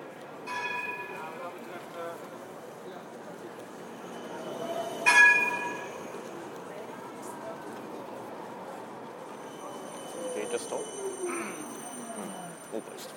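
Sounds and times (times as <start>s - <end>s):
tram rumbling: 0.0s - 13.1s
tram bell clanging: 0.4s - 1.9s, 3.4s - 7.1s, 9.2s - 13.1s.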